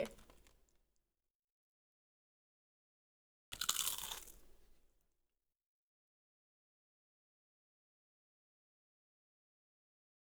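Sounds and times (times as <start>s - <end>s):
person eating snack: 3.6s - 4.4s.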